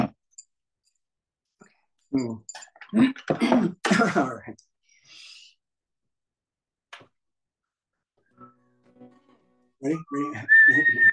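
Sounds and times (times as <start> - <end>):
speech: 2.1 - 5.2, 9.8 - 11.1
person whistling a tune: 9.9 - 11.1.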